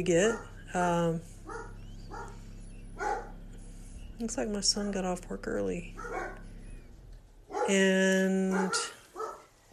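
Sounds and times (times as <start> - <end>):
speech: 0.0 - 1.3, 4.2 - 6.4, 7.7 - 9.0
dog yelping: 0.0 - 4.7, 5.5 - 7.8, 8.5 - 9.5
dog barking: 0.1 - 3.7, 5.9 - 9.6.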